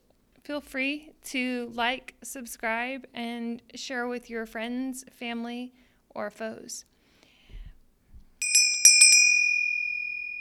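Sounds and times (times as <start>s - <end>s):
speech: 0.5s - 6.9s
bright clear bell ringing: 8.4s - 10.4s.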